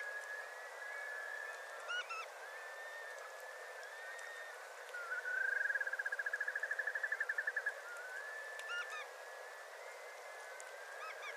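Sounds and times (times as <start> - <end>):
Bar-tailed godwit pulsed call notes: 0.0 - 9.1
soft hiss: 0.0 - 11.3.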